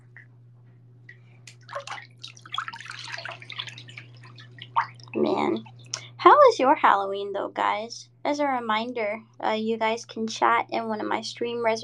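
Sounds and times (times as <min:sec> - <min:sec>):
steady low hum: 0:00.0 - 0:11.8
water sloshing and splashing in a bathtub: 0:01.0 - 0:07.2
speech: 0:05.2 - 0:11.8.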